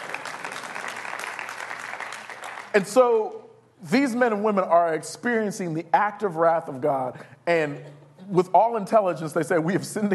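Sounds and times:
audience clapping: 0:00.0 - 0:02.9
speech: 0:02.8 - 0:10.1.

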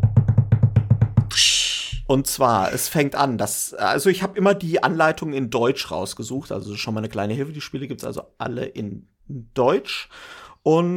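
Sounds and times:
hand drumroll on a surface: 0:00.0 - 0:01.3
speech: 0:02.1 - 0:10.9.

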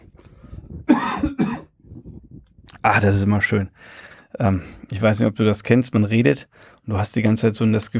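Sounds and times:
person coughing harshly: 0:00.8 - 0:01.8
speech: 0:02.8 - 0:07.9.

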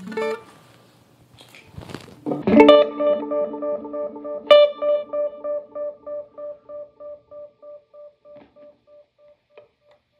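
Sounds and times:
capoed guitar notes with compression echoed by two delays including Line 6 Echo Pro: 0:02.3 - 0:09.0.

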